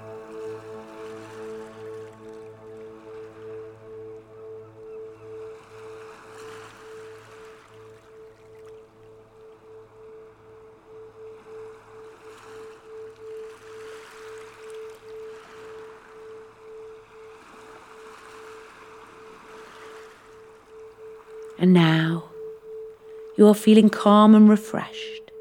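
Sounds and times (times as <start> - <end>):
humming musical drone: 0.0 - 25.4
ocean waves: 0.0 - 25.4
speech: 21.6 - 22.2, 23.4 - 25.2.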